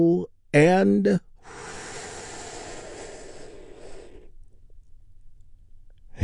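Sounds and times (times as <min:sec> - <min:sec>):
speech: 0:00.0 - 0:01.7
long deep breath taken during a guided relaxation exercise: 0:01.4 - 0:04.4.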